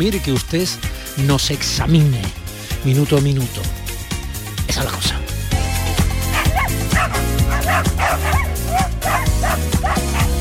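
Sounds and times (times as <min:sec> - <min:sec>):
speech: 0:00.0 - 0:03.8, 0:04.7 - 0:05.2
steady dense musical backing: 0:00.0 - 0:10.3
small dogs barking and yipping: 0:06.0 - 0:10.3.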